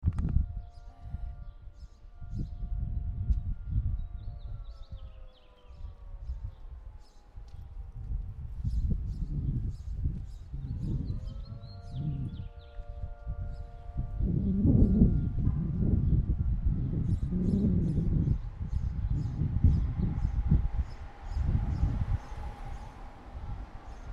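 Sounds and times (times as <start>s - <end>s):
wind: 0.0s - 24.1s
siren: 0.1s - 24.1s.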